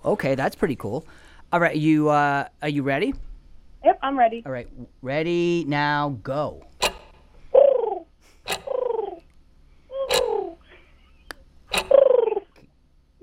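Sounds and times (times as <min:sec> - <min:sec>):
speech: 0:00.0 - 0:06.7
person imitating a pigeon call: 0:07.6 - 0:09.3, 0:09.9 - 0:10.7, 0:11.9 - 0:12.6.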